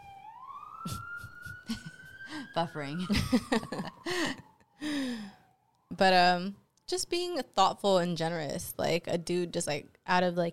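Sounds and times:
emergency vehicle siren wailing: 0:00.0 - 0:06.7
speech: 0:02.6 - 0:04.4, 0:06.0 - 0:10.5.

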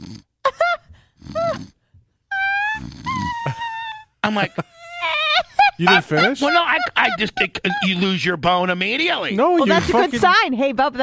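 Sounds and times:
person imitating a woman snoring: 0:00.0 - 0:00.3, 0:01.2 - 0:01.8, 0:02.6 - 0:04.0
laughter: 0:03.4 - 0:10.3
speech: 0:04.3 - 0:05.2, 0:05.8 - 0:11.0.

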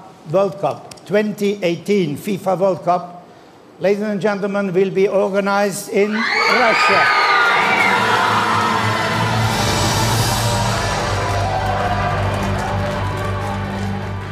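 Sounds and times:
speech: 0:00.3 - 0:03.2, 0:03.8 - 0:07.2
large crowd screaming and booing: 0:06.1 - 0:14.3
steady brassy trumpet-like tones droning: 0:07.5 - 0:14.3.

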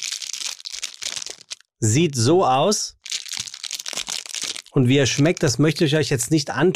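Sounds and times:
crinkling wrapper of a walnut-fig snack bar: 0:00.0 - 0:01.7, 0:03.0 - 0:05.8
speech: 0:01.8 - 0:03.0, 0:04.8 - 0:06.7.

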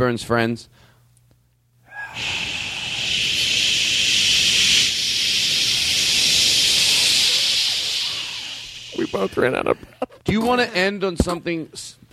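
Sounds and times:
speech: 0:00.0 - 0:00.9, 0:09.0 - 0:12.1
people hissing into microphones: 0:01.9 - 0:10.0.

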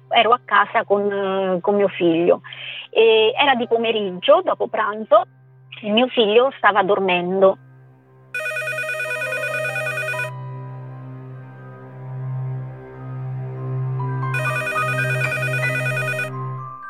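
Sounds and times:
speech: 0:00.2 - 0:07.6
telephone ringing in electronic bursts: 0:08.4 - 0:10.3, 0:14.3 - 0:16.4.

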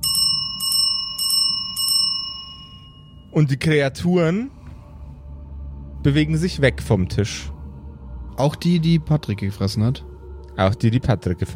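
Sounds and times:
reception bell struck: 0:00.0 - 0:03.4
speech: 0:03.3 - 0:04.6, 0:06.0 - 0:07.5, 0:08.4 - 0:11.5.

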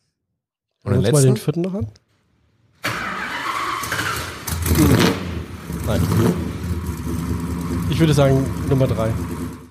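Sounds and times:
speech: 0:00.8 - 0:02.0, 0:05.9 - 0:06.5, 0:07.9 - 0:09.4
car engine starting and revving: 0:02.8 - 0:09.7.

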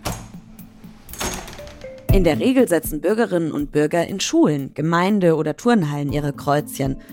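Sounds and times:
door opening with a clunk of the latch: 0:00.0 - 0:00.4, 0:01.1 - 0:02.3
speech: 0:02.2 - 0:07.1.

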